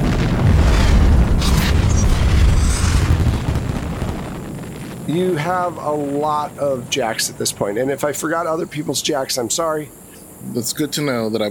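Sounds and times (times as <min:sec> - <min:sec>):
massive sustained explosion with deep low-end rumble: 0:00.0 - 0:08.4
crackling debris bursts: 0:00.0 - 0:09.9
speech: 0:05.1 - 0:11.4.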